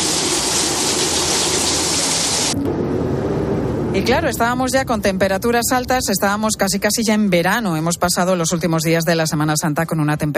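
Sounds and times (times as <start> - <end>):
heavy rain pouring down: 0.0 - 4.3
speech: 4.0 - 10.3.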